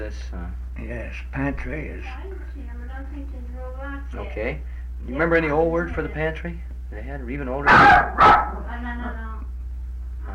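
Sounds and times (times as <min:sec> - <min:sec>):
speech: 0:00.1 - 0:09.5
dog barking: 0:07.6 - 0:08.7.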